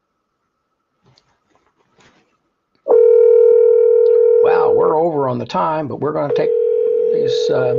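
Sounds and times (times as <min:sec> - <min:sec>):
telephone dial tone: 0:02.9 - 0:04.8, 0:06.3 - 0:07.7
speech: 0:05.0 - 0:07.7.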